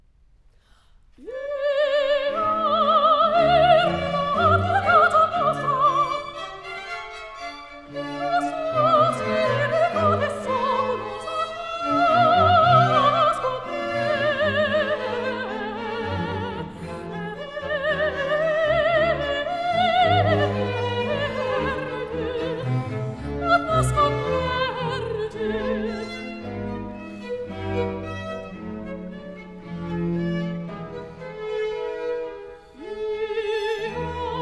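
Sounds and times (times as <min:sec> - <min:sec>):
mezzo-soprano or soprano singing: 0:01.2 - 0:34.4
strings playing: 0:02.3 - 0:34.4.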